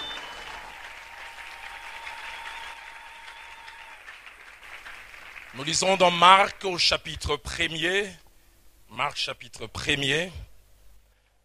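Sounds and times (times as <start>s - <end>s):
congregation clapping during a church service: 0.0s - 6.6s
speech: 5.5s - 8.2s, 9.0s - 10.4s.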